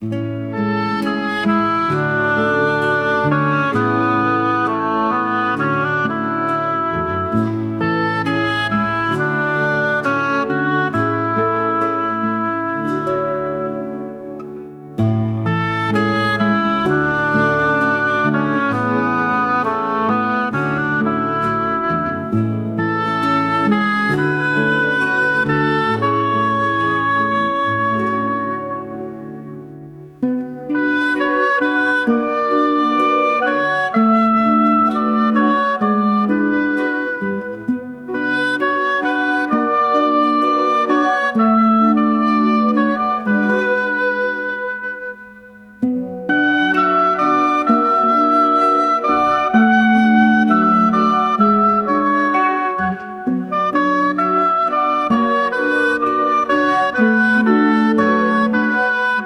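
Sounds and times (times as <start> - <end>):
AI recreation of hold music: 0.0 - 59.2.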